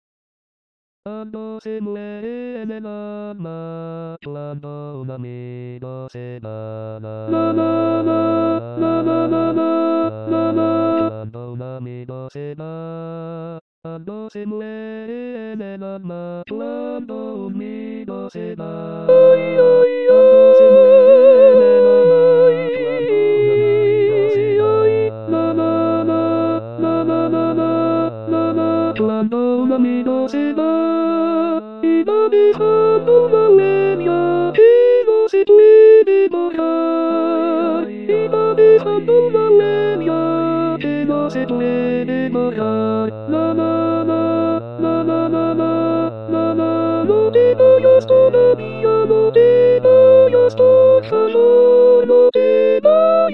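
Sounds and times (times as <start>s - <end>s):
soprano choir voice part singing: 7.3s - 11.1s, 16.4s - 53.3s.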